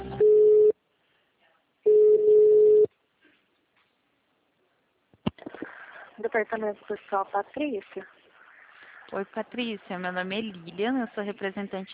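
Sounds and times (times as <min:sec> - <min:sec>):
telephone ringing tones while a phone call is being transferred: 0:00.2 - 0:00.7, 0:01.9 - 0:02.9
speech: 0:06.3 - 0:08.1, 0:09.1 - 0:11.9.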